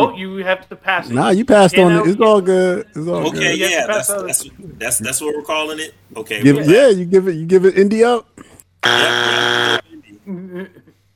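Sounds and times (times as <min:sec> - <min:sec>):
speech: 0:00.0 - 0:10.9
loud harsh game-show buzzer: 0:08.8 - 0:09.8.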